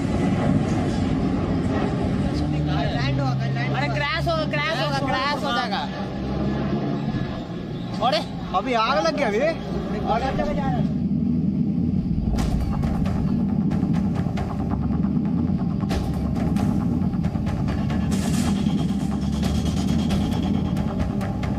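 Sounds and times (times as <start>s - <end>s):
aircraft engine roar during takeoff: 0.0s - 21.5s
speech: 8.0s - 10.8s.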